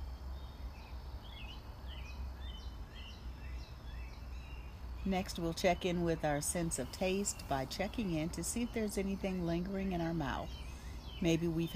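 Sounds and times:
birds chirping outdoors in the morning: 0:00.0 - 0:11.7
steady low outdoor rumble: 0:00.0 - 0:11.7
speech: 0:05.0 - 0:10.6, 0:11.2 - 0:11.7.

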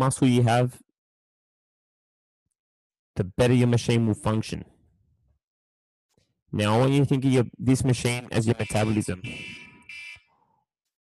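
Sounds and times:
speech: 0:00.0 - 0:00.8, 0:03.2 - 0:04.7, 0:06.5 - 0:09.6
loud harsh electronic alarm buzzer blaring: 0:08.5 - 0:10.3.

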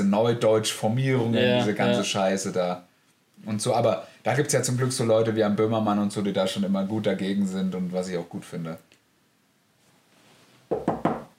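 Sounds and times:
speech: 0:00.1 - 0:09.0
knocking on wood: 0:10.7 - 0:11.3.

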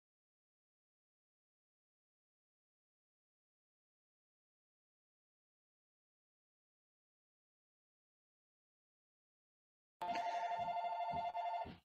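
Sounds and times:
telephone ringing in a buzzing burst: 0:10.0 - 0:11.8.

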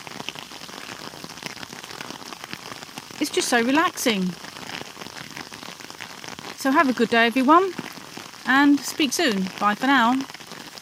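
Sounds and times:
rain pattering on a hard surface: 0:00.0 - 0:10.8
speech: 0:03.2 - 0:04.4, 0:06.6 - 0:07.8, 0:08.5 - 0:10.4.

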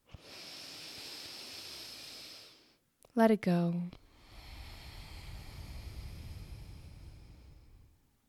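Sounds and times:
slow inhale through the nose during a guided breathing exercise: 0:00.0 - 0:02.8, 0:04.0 - 0:08.0
speech: 0:03.2 - 0:04.0.

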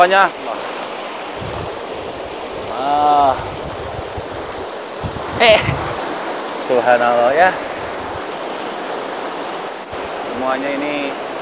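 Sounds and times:
speech: 0:00.0 - 0:00.6, 0:02.8 - 0:03.6, 0:05.4 - 0:05.8, 0:06.7 - 0:07.8, 0:10.4 - 0:11.2
water rushing in a stream or small cascade: 0:00.0 - 0:11.3.

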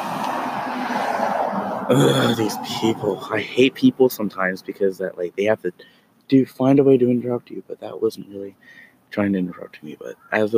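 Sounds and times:
car passing by with engine and tire rumble: 0:00.0 - 0:03.5
speech: 0:01.9 - 0:10.5.

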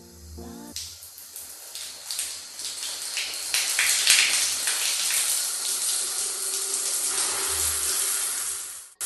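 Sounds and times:
shower faucet water running: 0:00.8 - 0:09.0.

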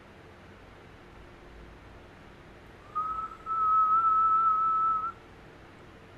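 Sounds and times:
eerie whistling: 0:02.8 - 0:05.2.

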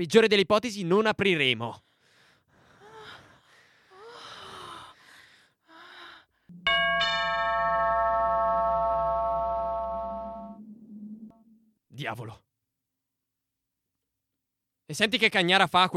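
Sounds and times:
speech: 0:00.0 - 0:01.9, 0:12.0 - 0:12.4, 0:14.9 - 0:15.9
breathy gasping vocal sounds: 0:01.8 - 0:06.6
doorbell chime: 0:06.6 - 0:10.6.

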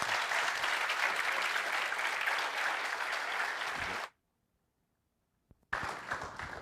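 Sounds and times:
audience applauding: 0:00.0 - 0:04.1, 0:05.7 - 0:06.6.

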